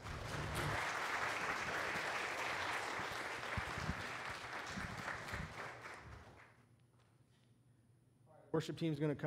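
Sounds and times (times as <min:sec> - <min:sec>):
crowd applauding in a large room: 0:00.0 - 0:06.6
speech: 0:08.6 - 0:09.2.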